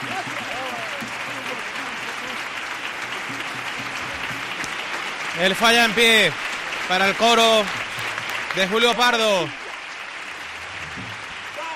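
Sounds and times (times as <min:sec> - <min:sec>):
large theatre audience applauding: 0:00.0 - 0:11.7
speech: 0:05.4 - 0:07.8, 0:08.5 - 0:09.6.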